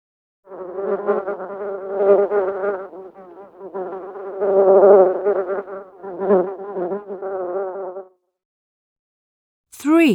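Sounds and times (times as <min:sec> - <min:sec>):
bee buzzing: 0:00.5 - 0:08.0
speech: 0:00.9 - 0:01.3.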